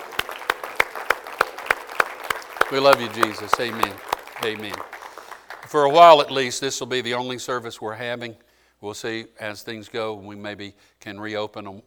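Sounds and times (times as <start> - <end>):
church congregation clapping in unison during a worship service: 0.0 - 6.7
speech: 2.7 - 5.0, 5.7 - 11.8.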